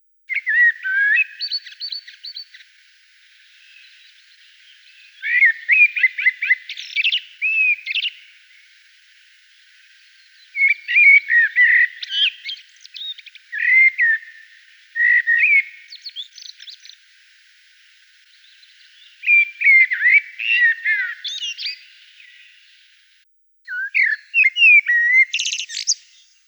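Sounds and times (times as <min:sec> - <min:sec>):
Turdus merula singing: 0:00.3 - 0:23.0, 0:23.7 - 0:26.4.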